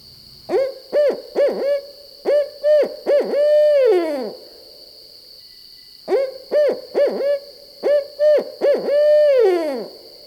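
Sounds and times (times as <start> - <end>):
faint steady high-pitched hum: 0.0 - 10.2
male barred owl mating call: 0.5 - 4.6, 6.1 - 10.0.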